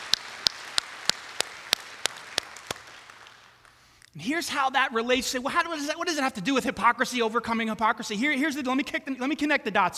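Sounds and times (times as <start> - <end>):
audience clapping in unison: 0.0 - 4.2
speech: 4.2 - 9.9.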